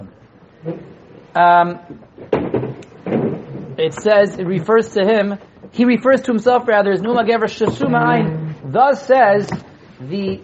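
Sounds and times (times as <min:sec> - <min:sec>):
speech: 0:00.6 - 0:02.0, 0:03.8 - 0:10.4
chair squealing as it is pulled off a stack: 0:00.6 - 0:05.8, 0:07.1 - 0:08.7
chair clunking and rattling as it is set down: 0:01.9 - 0:04.6.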